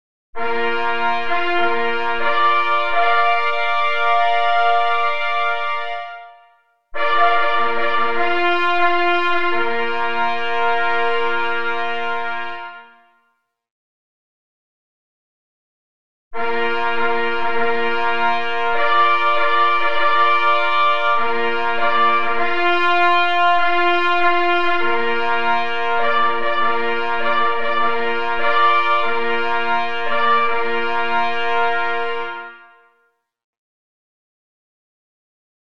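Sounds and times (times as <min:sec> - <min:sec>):
three hunting horns playing occasional signals: 0:00.4 - 0:06.4, 0:07.0 - 0:13.1, 0:16.4 - 0:32.9.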